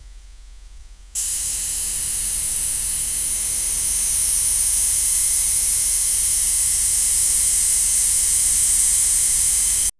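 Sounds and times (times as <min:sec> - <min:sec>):
soft steam hiss: 0:01.1 - 0:09.9.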